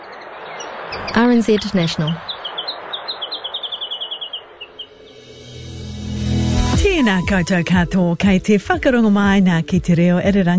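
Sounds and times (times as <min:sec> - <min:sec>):
Chatham Island warbler singing: 0:00.0 - 0:05.6
speech: 0:00.9 - 0:02.3, 0:07.1 - 0:10.5.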